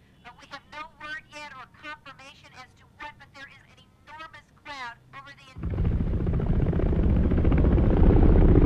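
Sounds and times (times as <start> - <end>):
military helicopters approaching overhead: 5.6 - 8.6.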